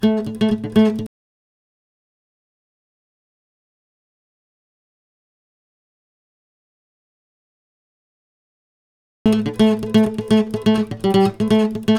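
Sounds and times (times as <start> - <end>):
lead guitar in A minor: 0.0 - 1.1, 9.3 - 11.9.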